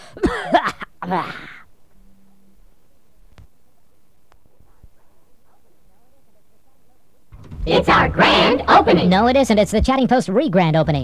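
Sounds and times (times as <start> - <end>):
person coughing rough throaty coughs: 0.0 - 1.7
speech: 0.2 - 1.5, 7.7 - 11.0.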